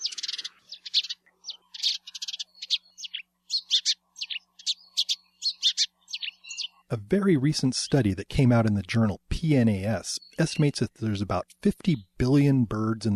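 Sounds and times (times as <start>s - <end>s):
house sparrow song chirps and cheeps: 0.0s - 6.9s, 10.1s - 10.8s
speech: 6.9s - 13.1s.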